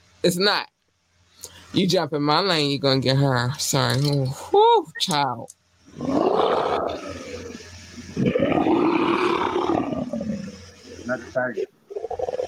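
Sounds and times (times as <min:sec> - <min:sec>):
speech: 0:00.2 - 0:00.7, 0:01.4 - 0:07.2, 0:11.1 - 0:11.8
person growling in imitation of lion roars: 0:06.0 - 0:12.4.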